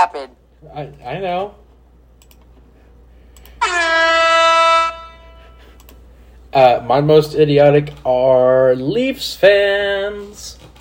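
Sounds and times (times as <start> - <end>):
speech: 0.0 - 1.6, 6.6 - 10.6
loud sustained brassy air horn blast: 3.6 - 5.7.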